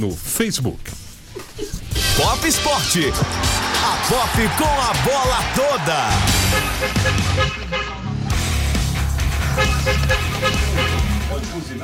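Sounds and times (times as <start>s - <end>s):
speech: 0.0s - 1.4s, 2.2s - 7.7s, 9.6s - 11.8s
car horns honking in busy street traffic: 6.1s - 8.2s, 9.3s - 11.5s
dense roar of engines and road noise in street traffic: 6.1s - 11.8s.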